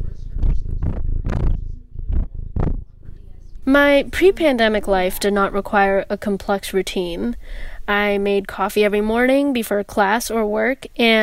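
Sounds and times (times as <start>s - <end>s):
cat purring under a person's arm in bed: 0.0s - 7.8s
speech: 3.7s - 11.2s.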